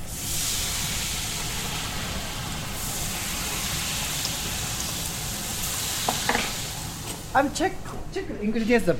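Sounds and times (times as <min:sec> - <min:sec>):
drops of batter sizzling in a vat of hot frying oil: 0:00.0 - 0:07.5
speech: 0:07.4 - 0:08.9.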